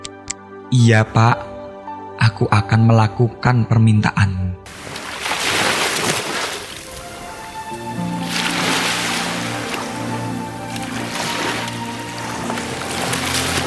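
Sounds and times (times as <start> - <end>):
speech: 0.7 - 1.5, 2.2 - 4.4
grey waves washing up a sandy beach at dawn: 4.7 - 13.6.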